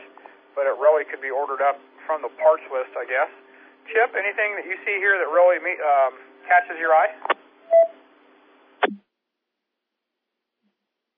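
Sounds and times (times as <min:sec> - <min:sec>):
speech: 0:00.6 - 0:08.0
electronic telephone tone beep: 0:07.7 - 0:07.9.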